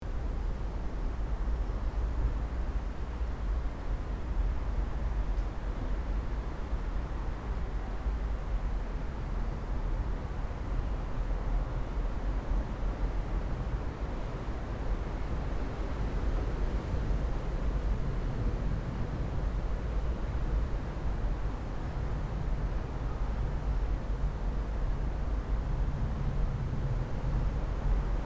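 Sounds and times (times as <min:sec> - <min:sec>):
gentle wind over sand dunes: 0:00.0 - 0:28.2.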